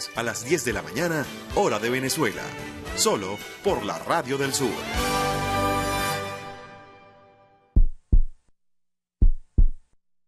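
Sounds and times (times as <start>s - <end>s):
speech: 0.2s - 5.3s
heartbeat sound effect of deep thumping double beats: 7.8s - 8.5s, 9.2s - 10.0s.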